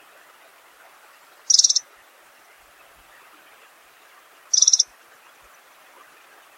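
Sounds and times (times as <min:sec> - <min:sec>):
faint steady background hiss: 0:00.0 - 0:06.5
pink-rumped rosefinch short high trilled calls: 0:01.5 - 0:01.8, 0:04.5 - 0:04.9.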